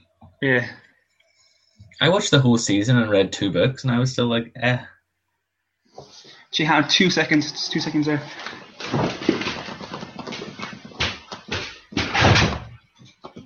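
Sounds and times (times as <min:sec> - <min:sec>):
speech: 0:00.4 - 0:00.8, 0:02.0 - 0:04.9, 0:06.0 - 0:09.1
door giving way: 0:12.0 - 0:12.8.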